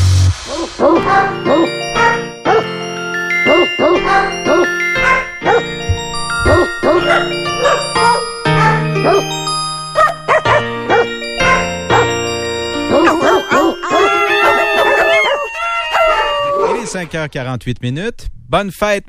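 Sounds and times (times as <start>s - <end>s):
steady musical backing: 0.0s - 16.3s
dog barks and yips pitched into a melody: 0.5s - 2.8s, 3.4s - 9.4s, 10.0s - 12.2s, 12.8s - 16.8s
speech: 17.2s - 19.0s.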